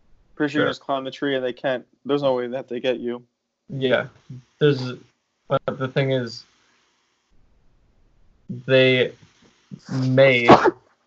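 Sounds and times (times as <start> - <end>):
speech: 0.4 - 6.5, 8.5 - 9.2, 9.8 - 10.8
single sharp sneeze with exhaled tail: 9.8 - 10.8.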